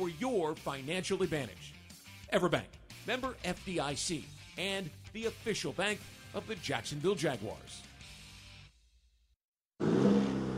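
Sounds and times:
speech: 0.0 - 7.9
2023 Chevy Silverado pickup truck 2.7 liter high output turbo engine revving: 9.8 - 10.5.

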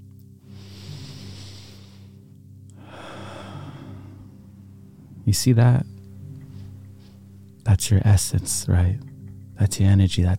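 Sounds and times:
low steady hum: 0.0 - 10.3
person taking a deep breath: 0.4 - 4.8
speech: 5.3 - 6.0, 7.8 - 10.3.

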